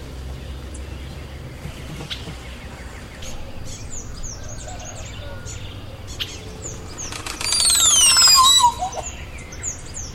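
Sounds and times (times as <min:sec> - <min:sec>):
other birds chirping: 0:00.4 - 0:10.1
crested oropendola Psarocolius decumanus display call: 0:02.1 - 0:10.1.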